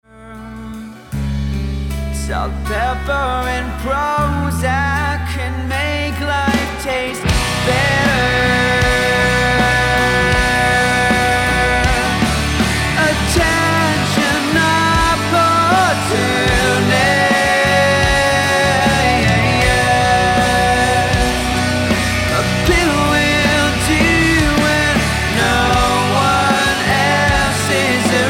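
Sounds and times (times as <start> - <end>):
hard rock music: 0.4 - 28.2.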